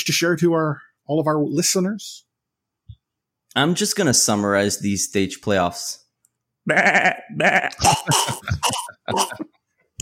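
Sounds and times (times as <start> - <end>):
speech: 0.0 - 2.3, 3.6 - 6.0, 6.6 - 9.9
person imitating a choking goat bleat: 6.7 - 9.4
imitated choking coughing gasps and sputters: 7.5 - 9.9.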